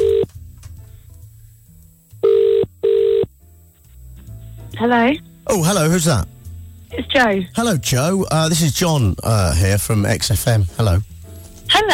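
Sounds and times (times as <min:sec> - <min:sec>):
ringing tone of an outgoing phone call: 0:00.0 - 0:00.3, 0:02.2 - 0:03.3
speech: 0:04.8 - 0:06.3, 0:06.9 - 0:11.1, 0:11.8 - 0:11.9.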